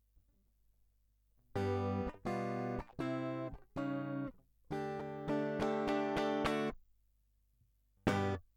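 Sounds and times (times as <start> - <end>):
guitar line: 1.6 - 6.8, 8.1 - 8.4.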